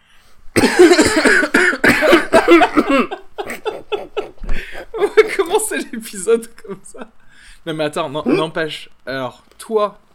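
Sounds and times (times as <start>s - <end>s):
person coughing harshly: 0.6s - 5.4s
laughter: 2.1s - 7.2s
speech: 6.1s - 10.0s.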